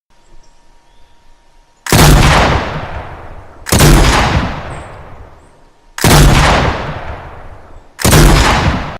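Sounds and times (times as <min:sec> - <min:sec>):
heavy shotgun sound effect: 0:01.9 - 0:05.3, 0:06.0 - 0:08.9.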